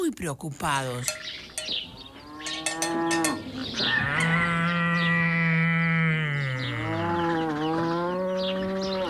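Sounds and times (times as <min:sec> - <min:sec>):
speech: 0:00.1 - 0:01.8
cow mooing: 0:02.0 - 0:09.0.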